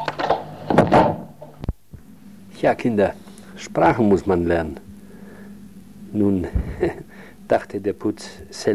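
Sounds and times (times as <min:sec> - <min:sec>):
door shutting with a solid thump: 0:00.2 - 0:01.3
speech: 0:02.6 - 0:04.9, 0:06.1 - 0:08.7.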